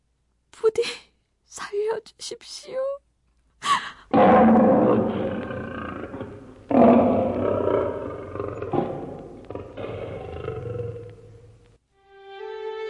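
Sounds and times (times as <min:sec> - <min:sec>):
speech: 0:00.7 - 0:01.1, 0:02.0 - 0:03.0
tiger roaring: 0:04.1 - 0:11.6.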